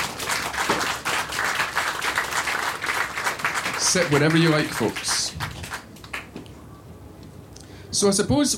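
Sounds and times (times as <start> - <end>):
audience clapping for panel: 0.0 - 6.5
speech: 3.8 - 5.2, 8.0 - 8.5.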